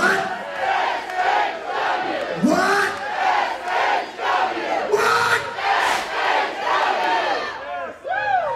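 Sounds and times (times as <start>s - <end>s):
wrestling show crowd cheering and yelling: 0.0s - 8.5s.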